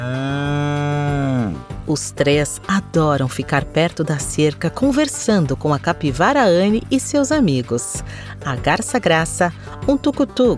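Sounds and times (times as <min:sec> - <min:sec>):
cow mooing: 0:00.0 - 0:01.6
speech: 0:01.9 - 0:10.5.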